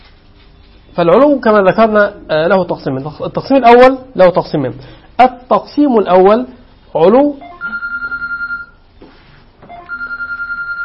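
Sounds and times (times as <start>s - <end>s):
speech: 1.0s - 7.4s
mobile phone ringing during a religious lesson: 7.4s - 8.8s, 9.6s - 10.8s.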